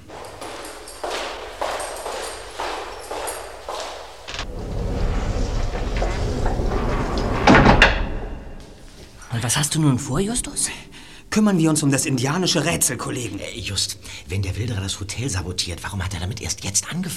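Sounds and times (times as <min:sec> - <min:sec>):
evenly spaced steps or knocks: 0:00.0 - 0:04.3
door shutting with a thud: 0:04.3 - 0:08.9
low rumble: 0:04.3 - 0:14.6
speech: 0:09.5 - 0:17.1.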